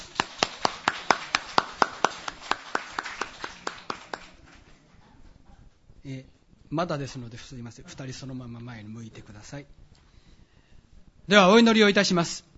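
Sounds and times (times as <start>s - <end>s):
audience clapping at an engagement ceremony: 0.0s - 5.0s
faint murmur: 0.0s - 11.3s
speech: 6.0s - 9.8s, 11.3s - 12.5s.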